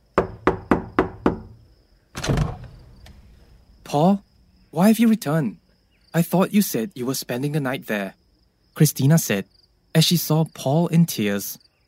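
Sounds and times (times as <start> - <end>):
knocking on a door: 0.2 - 1.6
speech: 3.9 - 8.2, 8.8 - 11.8.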